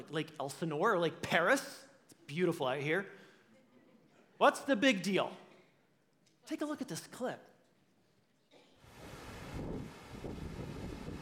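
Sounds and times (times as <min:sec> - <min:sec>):
speech: 0:00.0 - 0:03.2, 0:04.4 - 0:05.4, 0:06.5 - 0:07.5
wind gusts buffeting microphone over a lake: 0:09.0 - 0:11.2.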